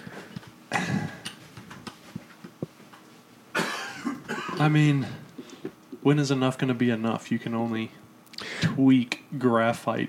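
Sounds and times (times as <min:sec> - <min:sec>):
man coughing harshly: 0:00.7 - 0:01.2, 0:03.5 - 0:05.2
speech: 0:04.6 - 0:05.2, 0:06.0 - 0:08.0, 0:08.7 - 0:10.0.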